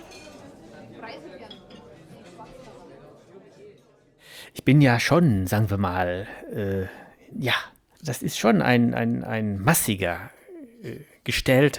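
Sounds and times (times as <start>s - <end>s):
glasses clinking in a toast: 0.0s - 2.6s
murmur of voices: 0.0s - 7.6s
speech: 4.6s - 11.7s.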